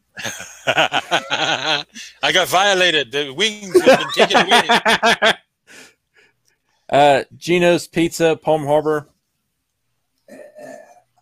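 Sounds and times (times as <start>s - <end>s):
speech: 0.2s - 1.0s, 2.3s - 5.4s, 6.9s - 9.1s
laughter: 0.2s - 2.4s, 3.6s - 5.4s
woman burping: 10.3s - 11.2s.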